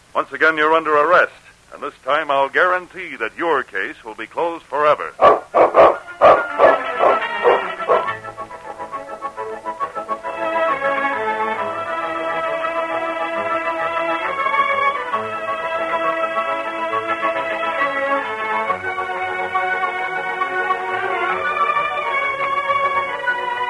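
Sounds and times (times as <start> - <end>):
speech: 0.2 - 6.3
dog barking: 5.2 - 8.2
orchestral music: 6.0 - 23.6.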